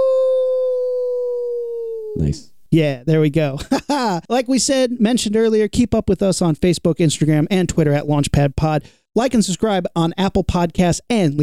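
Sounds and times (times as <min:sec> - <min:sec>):
werewolf howl: 0:00.0 - 0:02.3
speech: 0:02.2 - 0:11.4.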